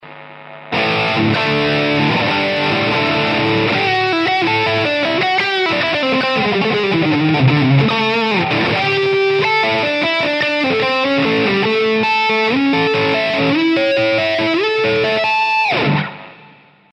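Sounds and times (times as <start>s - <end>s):
distorted guitar solo through a modelling amp: 0.0s - 16.9s.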